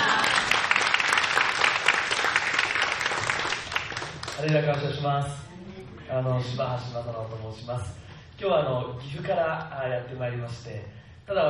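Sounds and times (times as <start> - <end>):
church congregation applauding: 0.0 - 5.0
speech: 4.4 - 5.5, 6.1 - 11.4.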